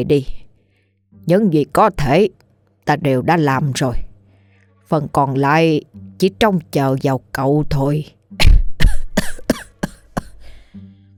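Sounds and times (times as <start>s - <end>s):
speech: 0.0s - 0.4s, 1.2s - 4.1s, 4.9s - 8.2s
elderly man coughing tiredly: 8.8s - 10.6s.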